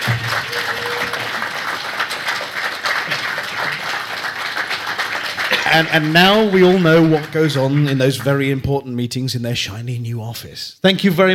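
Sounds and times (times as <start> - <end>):
crowd applauding: 0.0 - 8.7
speech: 5.7 - 11.3.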